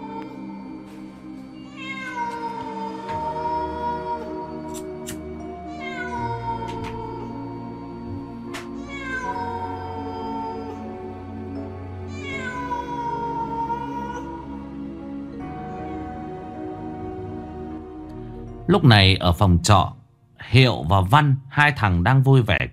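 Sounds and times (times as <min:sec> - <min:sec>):
cat meowing: 0:01.6 - 0:04.2, 0:05.7 - 0:07.3, 0:08.2 - 0:10.9, 0:12.1 - 0:14.5
speech: 0:18.7 - 0:22.7.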